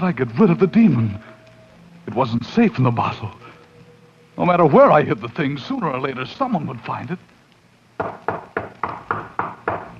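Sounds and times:
speech: 0.0 - 1.3, 2.1 - 3.4, 4.4 - 7.3
firm knocking on a door: 8.0 - 9.9.

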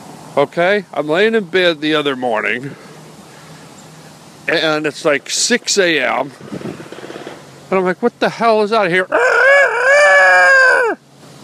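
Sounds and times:
speech: 0.4 - 2.8, 4.5 - 6.7, 7.7 - 9.2
rooster crowing: 9.1 - 11.0.

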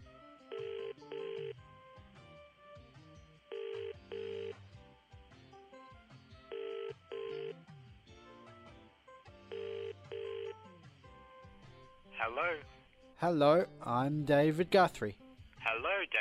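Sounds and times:
continuous music: 0.0 - 16.1
telephone ringing in double bursts: 0.5 - 1.6, 3.4 - 4.6, 6.4 - 7.7, 9.4 - 10.7
speech: 12.2 - 15.2, 15.8 - 16.1.

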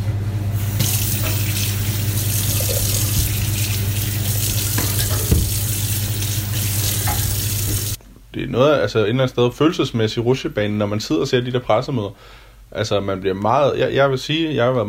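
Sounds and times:
water tap running while rinsing cucumbers: 0.6 - 8.0
faint knocks and splashes from rinsing cucumbers: 4.6 - 5.7
speech: 8.5 - 14.8.

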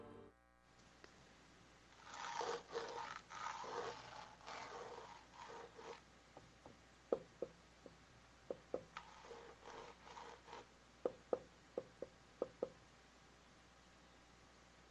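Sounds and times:
raspy scratching against the wall of a neighbouring house: 2.0 - 6.1, 8.5 - 12.0
sharp knocks on a wall: 6.4 - 8.9, 11.0 - 12.8.

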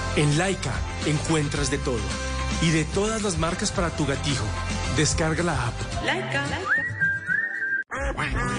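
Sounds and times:
speech: 0.2 - 6.9, 8.1 - 8.5
long steady whistle tone: 6.6 - 7.9
duck quacking: 7.9 - 8.5.

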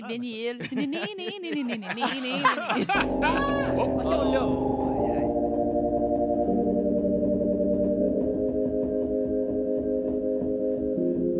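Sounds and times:
laughter: 0.0 - 4.7
speech: 0.0 - 5.2
warbly voice-like sounds: 2.8 - 5.3
faint pulsing low beat: 2.9 - 11.2
experimental music from a synthesizer controlled by a woman's brain: 2.9 - 11.3.

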